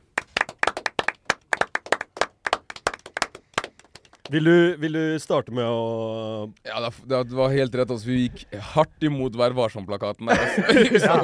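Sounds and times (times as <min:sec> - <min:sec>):
small group applauding a guest: 0:00.0 - 0:04.5
speech: 0:04.3 - 0:11.2
laughter: 0:10.3 - 0:11.2.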